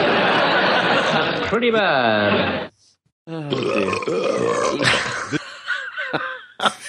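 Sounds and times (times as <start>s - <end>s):
laughter: 0.0s - 2.7s, 4.8s - 6.8s
speech: 1.5s - 5.4s, 6.1s - 6.8s
loud drawn-out recorded burp played back: 3.4s - 5.4s.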